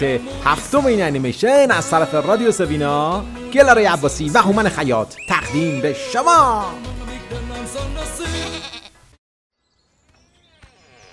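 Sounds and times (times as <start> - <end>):
speech: 0.0 - 8.2
sheep bleating in a fenced farm pen: 1.6 - 3.7, 4.6 - 6.8, 8.1 - 9.1.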